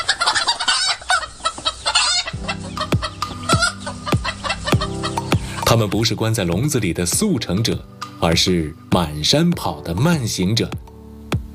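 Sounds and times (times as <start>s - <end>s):
Three Gorges black chickens clucking free-range on a mountainside: 0.0s - 6.6s
speech: 5.7s - 10.9s.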